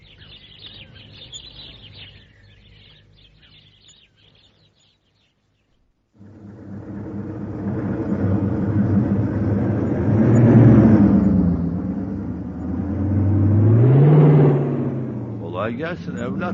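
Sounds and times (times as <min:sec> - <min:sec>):
heavy truck engine revving with wheels spinning in mud: 0:06.2 - 0:16.5
speech: 0:15.8 - 0:16.5.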